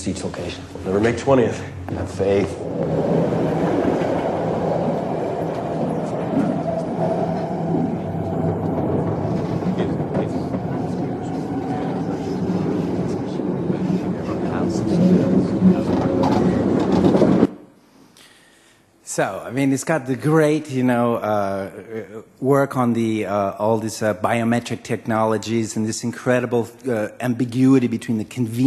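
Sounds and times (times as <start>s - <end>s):
speech: 0.0s - 3.7s, 19.2s - 28.6s
metro train rumbling along the rails: 0.0s - 17.6s
faint clickety-clack of metro train: 1.9s - 17.5s.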